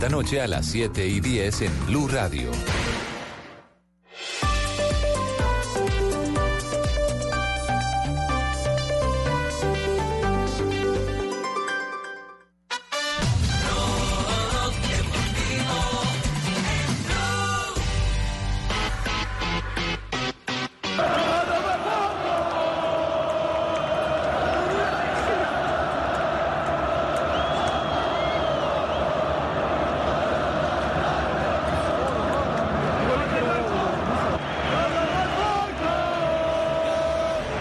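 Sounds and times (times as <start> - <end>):
speech: 0.0 - 2.9
busy music-like sound: 4.1 - 23.6
huge stadium crowd cheering a footballer's return: 20.8 - 37.5.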